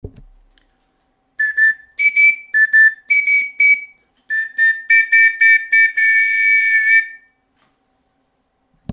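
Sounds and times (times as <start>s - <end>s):
two-tone filimbi whistle: 1.4s - 7.4s.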